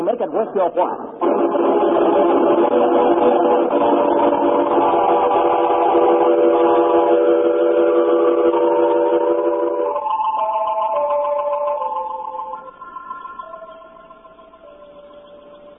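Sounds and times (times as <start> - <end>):
speech: 0.1 - 5.0
rumble and clatter of train cars pulling out of a station: 1.2 - 11.0
train horn blast: 5.6 - 10.0.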